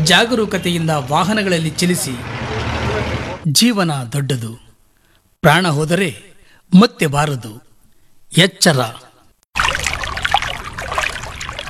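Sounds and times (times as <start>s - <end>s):
speech: 0.1s - 2.5s, 3.4s - 4.6s, 5.4s - 7.6s, 8.3s - 9.0s
water of a stream flowing along a winding forest path: 9.6s - 11.6s.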